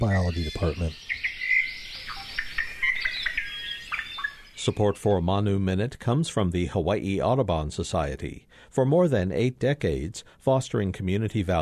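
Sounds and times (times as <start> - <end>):
speech: 0.0 - 1.2, 4.7 - 11.6
yellow-fronted canary singing: 0.0 - 5.2.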